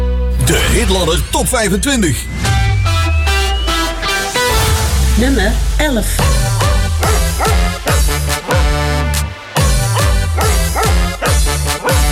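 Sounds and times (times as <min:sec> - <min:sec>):
driving musical backing of a song: 0:00.0 - 0:12.1
speech: 0:00.5 - 0:02.4, 0:05.2 - 0:06.7
Keeshond dog barking: 0:06.6 - 0:08.4, 0:09.7 - 0:12.1.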